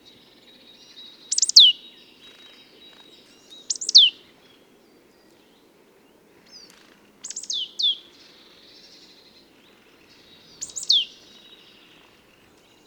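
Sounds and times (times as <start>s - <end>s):
faint low background noise: 0.0s - 12.8s
marsh tit Poecile palustris down-slurred call notes: 1.3s - 1.7s, 3.7s - 4.1s, 10.6s - 11.1s.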